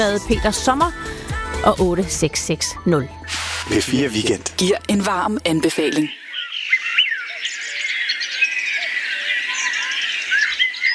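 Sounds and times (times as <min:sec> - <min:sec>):
speech: 0:00.0 - 0:06.2
dense chorus of birdsong with chirps, trills and whistles: 0:05.8 - 0:10.9.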